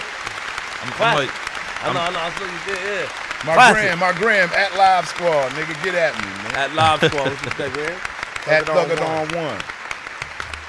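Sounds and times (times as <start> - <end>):
crowd applauding: 0.0 - 10.6
people whooping and calling out: 0.8 - 2.4, 3.4 - 4.0, 6.2 - 7.7
laughter: 0.8 - 2.6, 3.4 - 4.1, 6.1 - 9.0
speech: 0.8 - 9.8.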